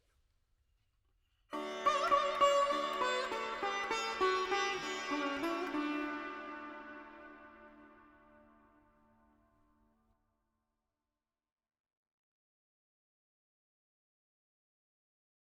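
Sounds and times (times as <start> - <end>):
veena melody in D with effects: 1.6 - 9.6.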